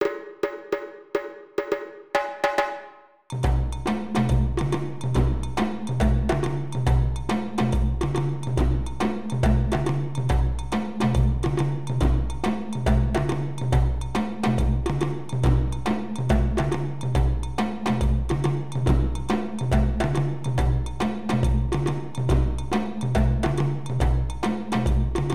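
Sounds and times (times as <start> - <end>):
djembes and dununs playing a break: 0.0 - 25.3.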